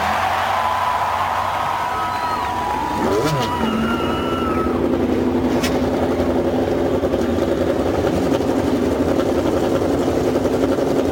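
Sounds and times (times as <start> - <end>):
crowd murmur at the Indianapolis Motor Speedway: 0.0 - 6.3
33 race car engines roaring at the Indianapolis Motor Speedway: 0.0 - 11.1.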